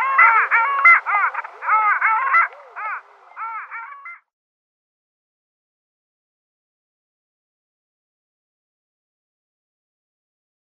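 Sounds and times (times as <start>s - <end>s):
male long-tailed duck giving yodelling nasal calls: 0.0s - 4.2s.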